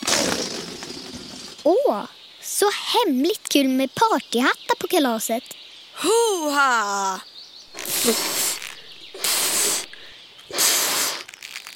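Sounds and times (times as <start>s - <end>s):
speech: 1.6s - 8.4s
forceful breathy puffs of air blown into a very large balloon: 7.7s - 11.4s.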